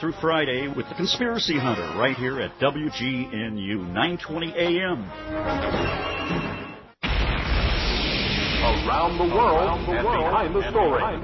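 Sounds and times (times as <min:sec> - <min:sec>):
speech: 0:00.0 - 0:06.5, 0:08.7 - 0:11.2
thunderous crash sound effect: 0:07.0 - 0:10.9.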